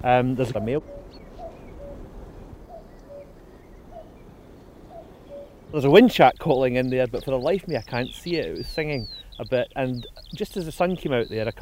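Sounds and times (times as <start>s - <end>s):
speech: 0.0s - 1.2s, 5.7s - 11.5s
male cuckoo calling its two-note call: 0.0s - 11.5s.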